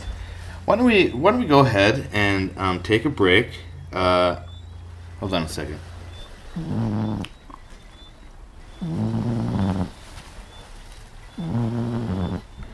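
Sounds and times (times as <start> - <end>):
speech: 0.7 - 4.5, 5.2 - 5.9, 6.6 - 7.3, 8.8 - 9.3
cat snoring: 6.3 - 7.4, 8.7 - 10.0, 11.3 - 12.7.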